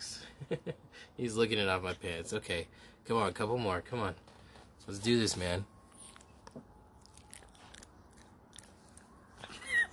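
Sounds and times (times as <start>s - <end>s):
speech: 0.4s - 5.7s
dog chewing and crunching dog treats on Halloween: 5.8s - 9.6s.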